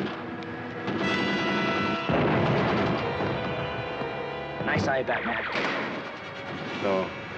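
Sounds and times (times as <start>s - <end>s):
dense continuous gunfire: 0.8s - 4.1s, 4.7s - 7.1s
speech: 4.8s - 6.0s, 6.8s - 7.2s.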